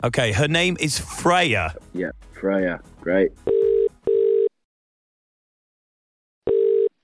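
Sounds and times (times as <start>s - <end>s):
speech: 0.0s - 3.5s
phone ringback tone through a handset: 3.5s - 4.5s, 6.5s - 7.0s.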